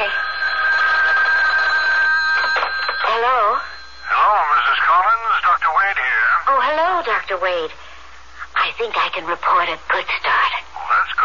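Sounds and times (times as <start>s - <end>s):
telephone bell ringing with a metallic trill: 0.0s - 5.4s
speech: 5.1s - 7.8s, 8.6s - 10.6s.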